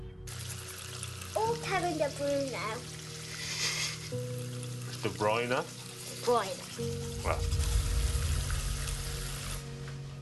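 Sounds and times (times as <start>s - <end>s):
water running from a tap: 0.3s - 9.7s
speech: 1.6s - 3.0s, 4.1s - 7.8s
low hum: 7.0s - 10.2s.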